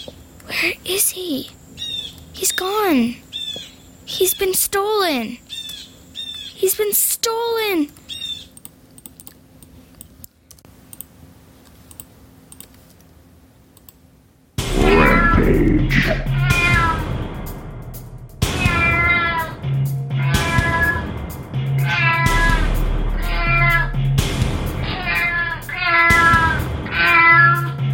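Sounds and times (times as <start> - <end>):
speech: 0.5 - 1.6, 2.4 - 5.4, 6.6 - 8.0
black and white cat meowing loudly: 14.7 - 17.1, 18.5 - 21.0, 21.8 - 23.9, 24.8 - 27.8.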